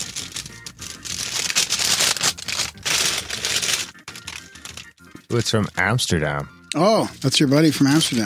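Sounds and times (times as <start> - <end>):
plastic mailing bag of a package crinkling and tearing: 0.0 - 5.6
speech: 5.3 - 8.2.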